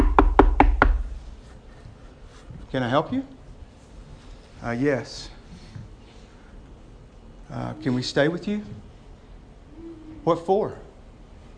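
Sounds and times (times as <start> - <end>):
firm knocking on a wooden door: 0.0 - 1.1
speech: 2.7 - 3.4, 4.6 - 5.4, 7.5 - 8.9, 10.2 - 10.8.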